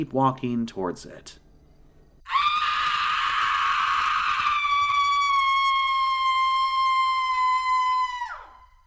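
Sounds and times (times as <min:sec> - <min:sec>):
speech: 0:00.0 - 0:01.4
long piercing eerie scream: 0:02.2 - 0:08.8.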